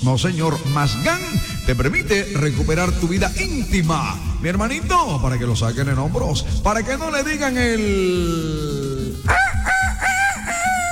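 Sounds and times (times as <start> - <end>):
speech: 0.0 - 9.4
rooster crowing: 9.3 - 10.8.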